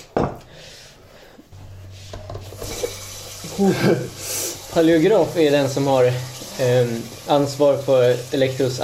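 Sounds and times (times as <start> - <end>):
water running from a tap into a carafe: 2.4 - 8.8
speech: 3.6 - 8.8.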